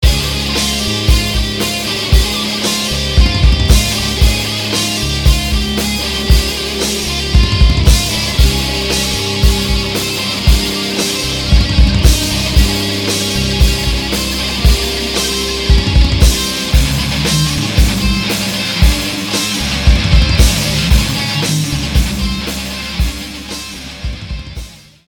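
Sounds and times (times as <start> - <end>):
heavy rock music: 0.0 - 25.0.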